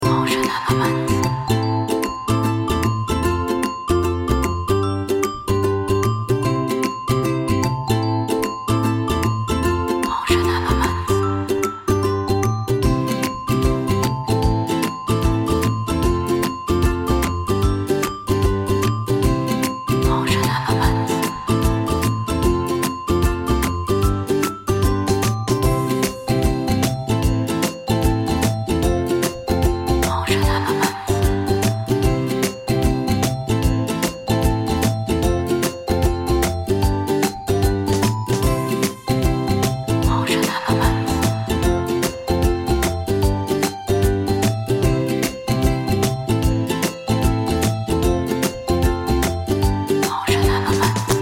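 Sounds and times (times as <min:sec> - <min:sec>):
happy background ukulele folk loop: 0:00.0 - 0:51.2.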